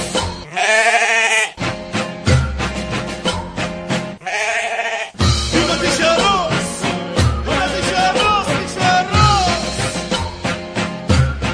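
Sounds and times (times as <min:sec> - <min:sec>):
sheep bleating: 0:00.4 - 0:01.6, 0:04.2 - 0:05.2
rhythmic music: 0:01.6 - 0:04.2, 0:05.2 - 0:11.5.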